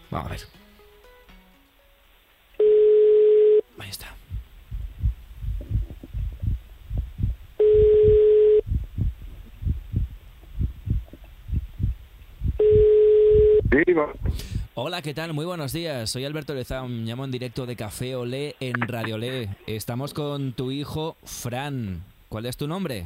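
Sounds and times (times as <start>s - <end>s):
speech: 0.1s - 0.6s, 14.8s - 23.0s
telephone ringback tone of an outgoing call being dialed: 2.6s - 3.7s, 7.6s - 8.6s, 12.6s - 13.6s
soft rhythmic low thumping: 3.8s - 14.7s.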